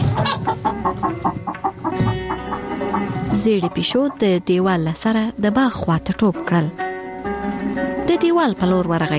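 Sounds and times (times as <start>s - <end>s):
hen clucking: 0.0s - 4.9s
speech: 3.4s - 6.8s, 8.3s - 9.1s.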